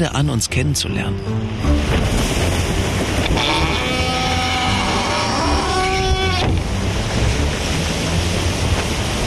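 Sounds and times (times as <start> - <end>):
speech: 0.0 - 2.0, 3.3 - 3.6
sailboat surging through ocean waves: 0.0 - 9.2
drawn-out creaking groan of a sailboat: 3.0 - 7.5.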